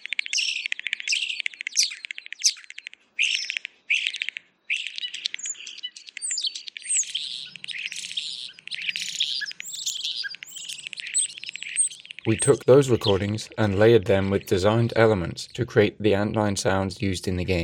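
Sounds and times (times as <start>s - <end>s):
European starling calls of harsh clicks, rattles and squeaky whistles: 0.0s - 6.8s, 7.6s - 14.8s
speech: 12.3s - 17.6s.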